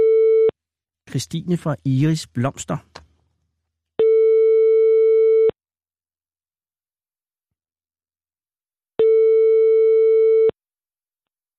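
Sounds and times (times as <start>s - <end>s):
speech: 1.1s - 3.0s
telephone line ringback tone of an outgoing call to a flower shop: 4.0s - 5.6s, 9.0s - 10.6s.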